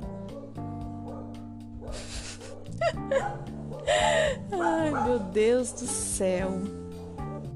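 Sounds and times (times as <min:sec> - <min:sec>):
dog barking frantically outside: 0:00.4 - 0:05.2
laughter: 0:02.0 - 0:03.4
speech: 0:02.8 - 0:06.8.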